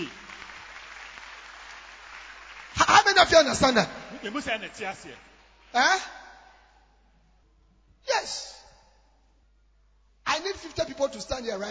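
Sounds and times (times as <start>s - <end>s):
large church audience clapping: 0.0s - 5.7s
speech: 3.2s - 6.2s, 8.0s - 8.6s, 10.4s - 11.6s.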